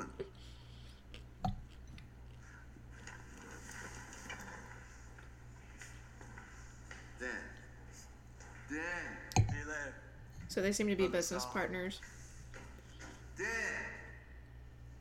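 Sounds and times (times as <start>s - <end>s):
crunchy chewing of popcorn: 0.0s - 6.5s
steady low electrical hum: 0.0s - 14.9s
speech: 8.7s - 12.2s.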